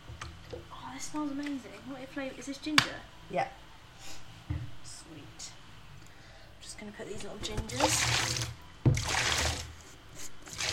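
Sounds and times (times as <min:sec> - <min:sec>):
speech: 0:01.0 - 0:03.6, 0:06.8 - 0:08.6
bath water swished to froth up bubbles in a tub: 0:07.5 - 0:09.8, 0:10.4 - 0:10.7
sharp splash of bath water in a tub: 0:07.7 - 0:09.7, 0:10.5 - 0:10.7.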